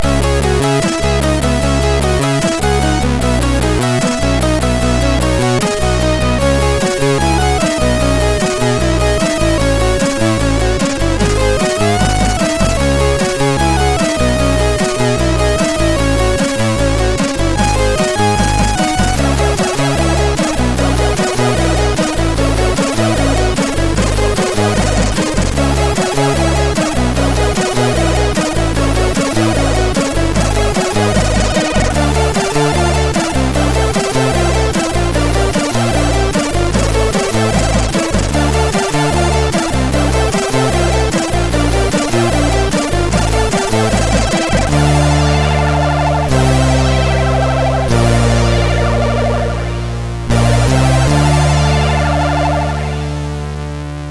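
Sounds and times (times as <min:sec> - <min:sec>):
MOS6581R3 SID sound chip synthesizer tones: 0:00.0 - 0:54.0.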